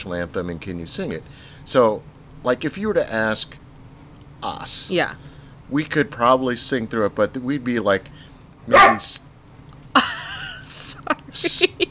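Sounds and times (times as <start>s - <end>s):
speech: 0.0s - 3.6s, 4.4s - 9.3s, 11.0s - 11.8s
puppy barking and yipping: 8.7s - 9.2s
laughter: 10.0s - 11.8s.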